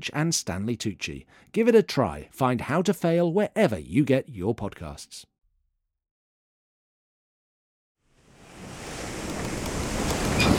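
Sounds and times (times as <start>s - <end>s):
speech: 0.0s - 5.3s
sea waves rushing: 8.2s - 10.5s
gusting wind: 8.3s - 10.5s.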